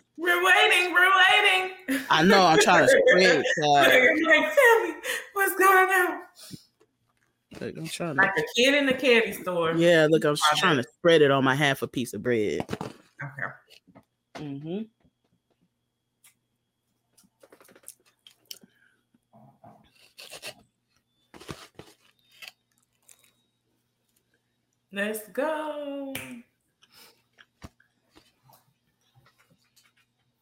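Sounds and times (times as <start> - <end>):
speech: 0.2 - 6.6, 7.6 - 13.6, 14.4 - 15.0, 24.9 - 26.5
laughter: 1.9 - 5.0
person chewing food: 17.3 - 18.8, 21.4 - 23.4.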